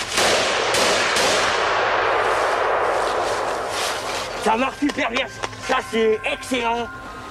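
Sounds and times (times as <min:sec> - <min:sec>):
military rifle firing in a forest: 0:00.1 - 0:03.4
speech: 0:04.5 - 0:07.0.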